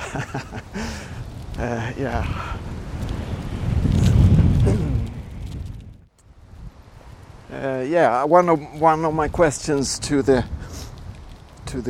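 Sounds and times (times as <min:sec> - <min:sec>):
laughter: 0:00.0 - 0:00.8
strong wind gusts across a railroad bridge: 0:00.0 - 0:11.8
speech: 0:00.1 - 0:02.8, 0:07.6 - 0:10.8.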